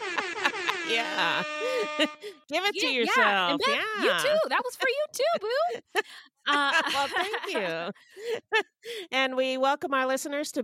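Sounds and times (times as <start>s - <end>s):
hip hop style air horn blasts: 0.0s - 3.5s
laughter: 0.0s - 8.7s
speech: 0.9s - 10.6s.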